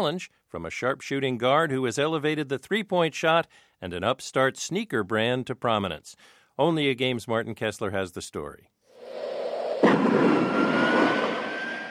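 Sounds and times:
speech: 0.0s - 9.4s
jet airplane engine roaring on takeoff: 9.0s - 11.8s.

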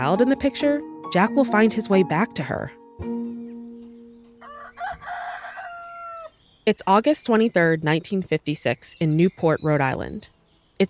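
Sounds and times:
speech: 0.0s - 2.8s, 6.6s - 10.8s
rooster crowing: 4.4s - 6.3s.

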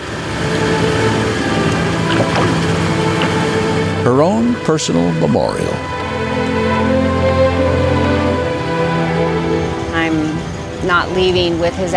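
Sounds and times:
broad rushing boat wash across open water: 0.0s - 4.0s
boat motor drone on Manila Bay in the Philippines: 0.0s - 11.9s
faint splashes and knocks: 1.6s - 3.8s
speech: 4.0s - 6.0s, 10.9s - 11.9s.

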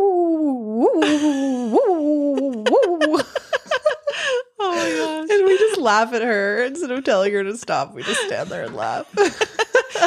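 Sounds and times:
person imitating a pet dog howling at the neighbours: 0.0s - 3.2s
laughter: 1.0s - 6.0s, 8.0s - 10.0s
speech: 5.8s - 10.0s.

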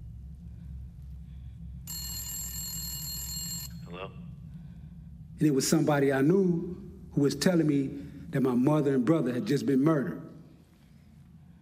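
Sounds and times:
low steady hum: 0.0s - 11.5s
telephone ringing: 1.9s - 3.9s
speech: 3.9s - 4.3s, 5.4s - 10.2s.

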